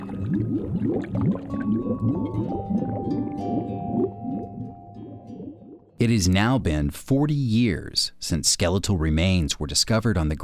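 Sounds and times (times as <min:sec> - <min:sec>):
underwater gurgling: 0:00.0 - 0:06.0
speech: 0:00.3 - 0:04.9, 0:06.0 - 0:10.4.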